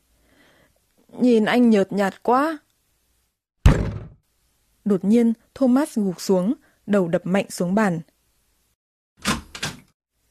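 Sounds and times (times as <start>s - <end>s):
speech: 1.1s - 2.6s, 4.9s - 8.1s
room door creaking and scraping open: 9.2s - 9.8s.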